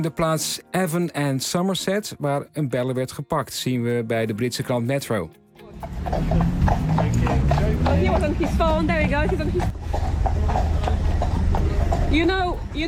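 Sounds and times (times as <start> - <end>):
speech: 0.0 - 10.8, 12.1 - 12.8
British police horse hooves clip-clopping: 5.8 - 12.8.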